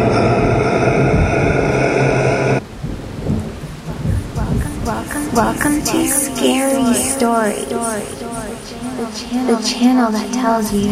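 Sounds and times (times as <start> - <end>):
heavy roaring rumble of thunder: 0.0 - 6.1
steady pouring rain hissing: 0.0 - 10.9
speech: 5.8 - 10.9.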